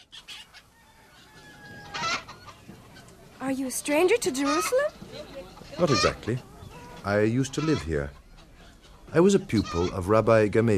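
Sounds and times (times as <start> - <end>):
chickens clucking and squawking in a hen house: 0.0 - 10.5
speech: 3.5 - 8.2, 9.1 - 10.7.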